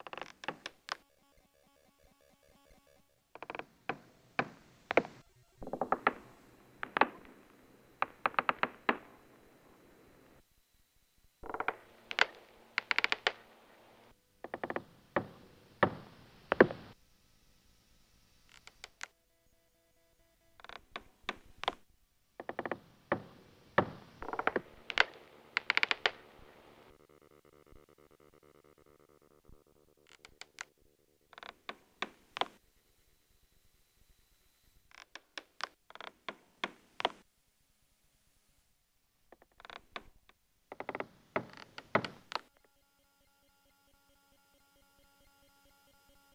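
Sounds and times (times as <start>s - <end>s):
rope creaking quietly: 0.0s - 1.0s, 3.3s - 9.7s, 11.4s - 17.0s, 22.4s - 26.9s, 30.0s - 30.7s, 31.3s - 32.6s, 39.3s - 42.5s.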